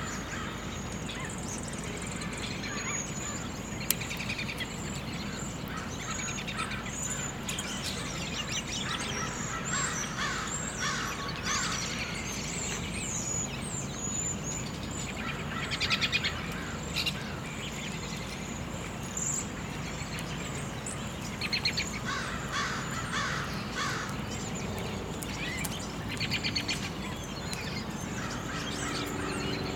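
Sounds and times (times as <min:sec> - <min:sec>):
birds chirping: 0:00.0 - 0:29.7.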